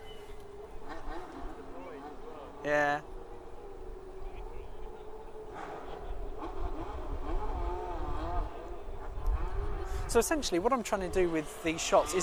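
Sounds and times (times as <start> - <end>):
high-revving F1 race car engine passing: 0.0 - 12.2
speech: 2.6 - 3.1, 10.1 - 12.2.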